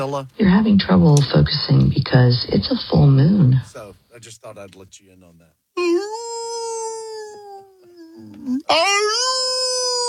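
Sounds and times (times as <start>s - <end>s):
speech: 0.0s - 6.2s, 8.2s - 9.5s
animal howling: 5.8s - 10.0s.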